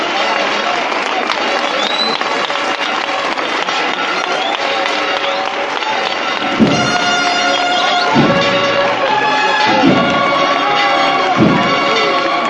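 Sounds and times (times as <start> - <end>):
large crowd applauding and cheering at a procession in Jaén: 0.0 - 12.4
parish church bells of La Merced in Jaén ringing: 2.5 - 12.4
deep booming thumps: 6.5 - 12.0.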